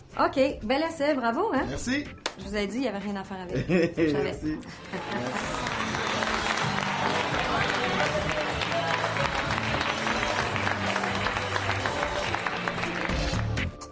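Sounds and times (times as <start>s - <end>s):
speech: 0.2s - 5.7s
laughter: 3.5s - 12.4s
faint murmur of voices: 4.7s - 12.7s
applause from a large studio audience: 4.8s - 13.8s.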